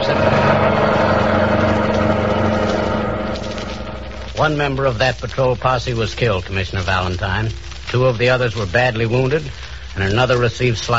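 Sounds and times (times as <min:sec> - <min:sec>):
getaway car engine roaring as it speeds off: 0:00.0 - 0:05.3
speech: 0:00.1 - 0:00.5, 0:04.4 - 0:10.9.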